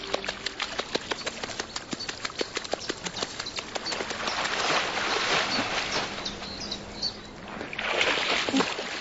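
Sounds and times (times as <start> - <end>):
water splashing as a dead fish is moved beneath the surface: 0.0 - 8.9.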